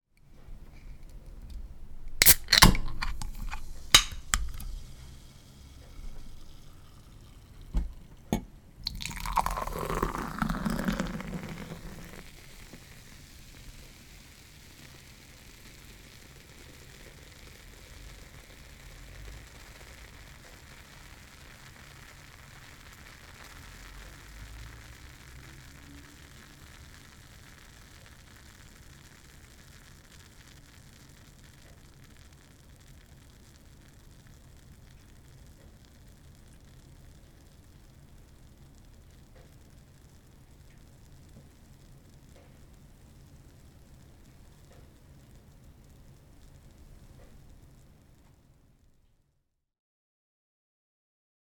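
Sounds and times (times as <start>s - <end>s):
beer foam fizzing: 1.0s - 48.0s.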